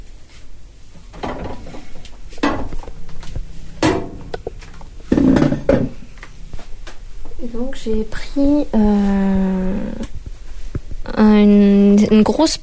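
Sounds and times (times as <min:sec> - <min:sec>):
wooden knocks from settling onto a chair with tools: 0:03.8 - 0:06.0
speech: 0:07.5 - 0:10.0, 0:11.2 - 0:12.6.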